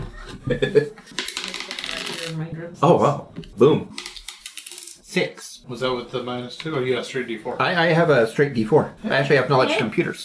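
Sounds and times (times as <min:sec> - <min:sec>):
speech: 0:00.4 - 0:01.3, 0:02.4 - 0:04.0, 0:05.2 - 0:10.2
dice rolling across a hard surface: 0:01.1 - 0:02.4, 0:04.0 - 0:05.0.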